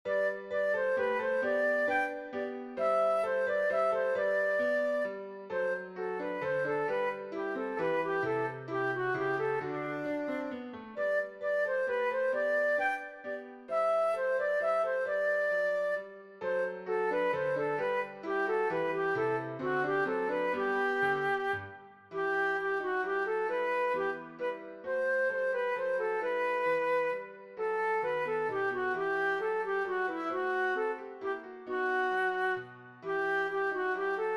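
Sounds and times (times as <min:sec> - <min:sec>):
flute: 0:00.0 - 0:34.3
piano: 0:00.0 - 0:34.3.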